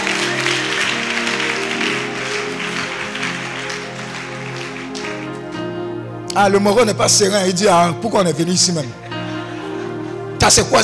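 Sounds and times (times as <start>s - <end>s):
church congregation applauding during a worship service: 0.0s - 6.3s
speech: 6.4s - 9.0s, 10.4s - 10.8s.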